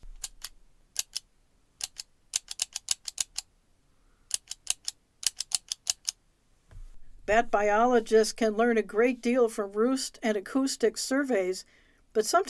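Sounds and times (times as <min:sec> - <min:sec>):
tally clicker counters clicking when pressed to count bats: 0:00.0 - 0:03.5, 0:04.3 - 0:06.2
faint hiss: 0:00.0 - 0:12.4
speech: 0:07.3 - 0:12.4.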